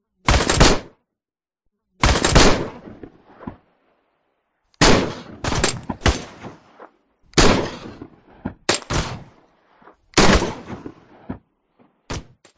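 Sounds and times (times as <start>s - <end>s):
various designed guns shooting: 0.2s - 0.9s, 2.0s - 3.7s, 4.8s - 11.5s.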